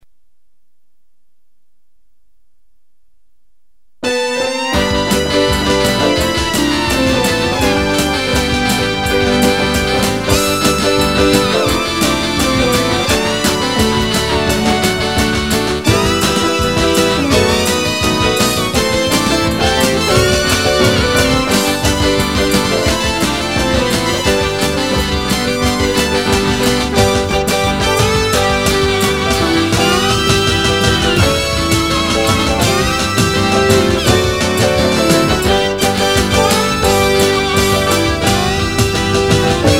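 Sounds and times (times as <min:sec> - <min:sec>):
drums: 0:04.0 - 0:39.7
guitar: 0:04.0 - 0:39.7
saxophone: 0:04.0 - 0:39.7.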